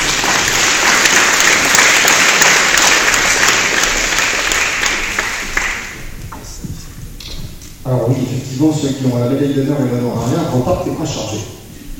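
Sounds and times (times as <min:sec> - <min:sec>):
applause from a sizable crowd: 0:00.0 - 0:06.6
speech: 0:07.9 - 0:11.6.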